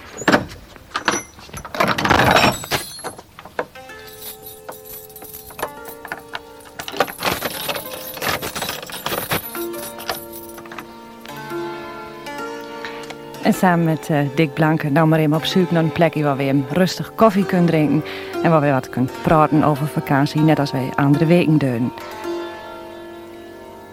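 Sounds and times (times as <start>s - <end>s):
heavy church door thudding shut: 0.0s - 3.8s
very large key rattling and grinding in an old church door lock: 0.2s - 11.3s
speech: 13.5s - 22.0s.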